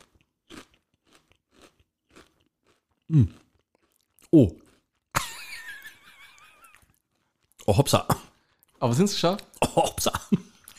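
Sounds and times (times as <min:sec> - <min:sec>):
crunchy spicy snack being bitten and chewed: 0:00.0 - 0:05.2, 0:06.6 - 0:08.8
speech: 0:03.1 - 0:03.4, 0:04.3 - 0:04.6, 0:07.7 - 0:08.2, 0:08.8 - 0:10.2.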